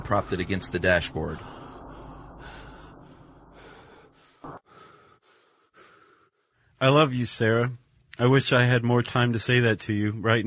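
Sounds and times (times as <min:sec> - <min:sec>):
speech: 0:00.1 - 0:01.7, 0:06.8 - 0:10.4
rapid heavy panting of a person out of breath: 0:01.4 - 0:06.6.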